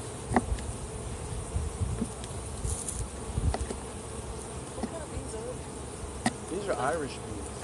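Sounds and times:
honeybees buzzing around a hive: 0:00.0 - 0:07.6
speech: 0:06.8 - 0:07.4.

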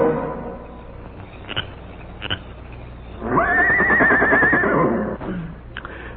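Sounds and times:
horse neighing: 0:03.2 - 0:05.5.

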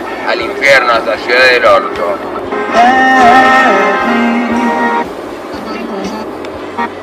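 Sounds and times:
traffic rumble heard from inside a vehicle: 0:00.0 - 0:07.0
speech: 0:00.3 - 0:04.2
car horn blaring heard from inside a vehicle: 0:02.4 - 0:07.0.

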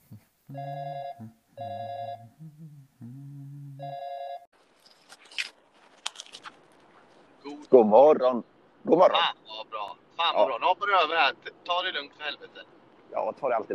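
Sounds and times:
low tones: 0:00.0 - 0:04.0
speech: 0:00.5 - 0:01.8, 0:07.8 - 0:09.4, 0:10.9 - 0:12.6, 0:13.2 - 0:13.7
telephone ringing on a call while waiting for someone to answer: 0:00.6 - 0:02.2, 0:03.8 - 0:04.4.

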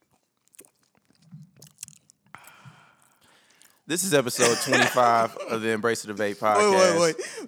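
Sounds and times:
slurp: 0:00.0 - 0:03.8, 0:04.4 - 0:05.4
person gulping a drink: 0:00.0 - 0:05.4
speech: 0:03.9 - 0:07.4
laughter: 0:04.3 - 0:07.4.

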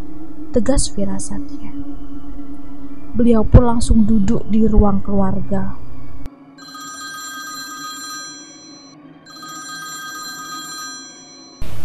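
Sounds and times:
low steady hum: 0:00.0 - 0:11.8
speech: 0:00.5 - 0:02.0, 0:03.2 - 0:05.8
mobile phone ringing with bright tonal electronic ringtone: 0:06.6 - 0:11.6.

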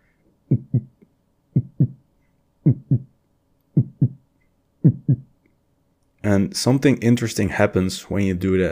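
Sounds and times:
speech: 0:00.5 - 0:00.9, 0:02.7 - 0:03.1, 0:06.3 - 0:08.7
heartbeat thumping: 0:00.5 - 0:01.0, 0:01.6 - 0:02.0, 0:02.7 - 0:03.1, 0:03.8 - 0:04.2, 0:04.8 - 0:05.3.

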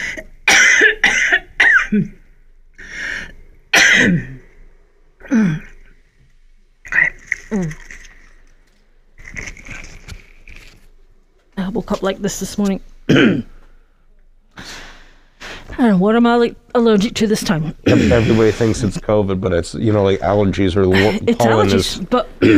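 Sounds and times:
person coughing: 0:00.0 - 0:02.2, 0:03.7 - 0:04.5, 0:05.2 - 0:05.8, 0:13.1 - 0:13.6, 0:17.8 - 0:18.6, 0:21.0 - 0:22.5
speech: 0:01.9 - 0:02.2, 0:11.9 - 0:13.5, 0:15.8 - 0:22.5.

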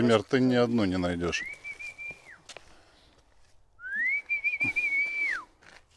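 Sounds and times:
speech: 0:00.0 - 0:01.6
person whistling to call a dog: 0:01.4 - 0:02.4, 0:03.8 - 0:05.5.

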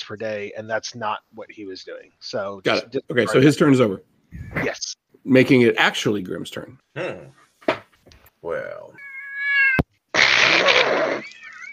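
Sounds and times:
speech: 0:00.1 - 0:07.4, 0:08.4 - 0:09.0
cat meowing: 0:09.0 - 0:11.7.

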